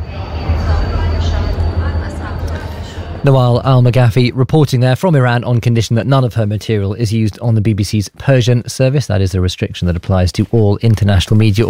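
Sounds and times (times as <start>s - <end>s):
steady low rumble inside a moving train carriage in Iran: 0.0s - 4.4s
faint indistinct voices in a moving train carriage in Iran: 0.0s - 5.9s
speech: 3.2s - 11.6s.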